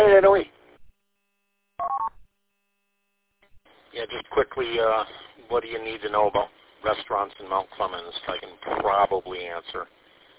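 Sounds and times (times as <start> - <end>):
speech: 0.2 - 0.6, 4.0 - 10.0
electronic phone tones while hanging up a plugged-in phone: 1.8 - 2.2.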